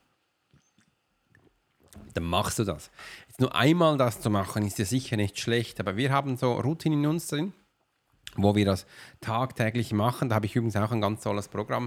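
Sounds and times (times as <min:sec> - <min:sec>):
person sipping water with wet slurps: 0:00.5 - 0:02.2
swallow of water: 0:00.6 - 0:02.2
speech: 0:02.0 - 0:07.6, 0:08.3 - 0:11.8.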